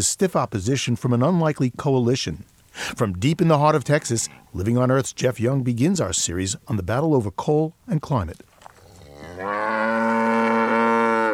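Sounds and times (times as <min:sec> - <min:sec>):
speech: 0:00.0 - 0:08.5, 0:09.2 - 0:10.0
Brangus cattle lowing in a pasture: 0:08.6 - 0:11.3.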